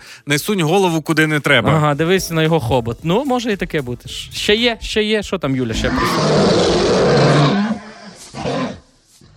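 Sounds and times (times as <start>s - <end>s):
speech: 0.2s - 7.6s
person roaring like a lion in gravelly bursts: 5.8s - 8.8s.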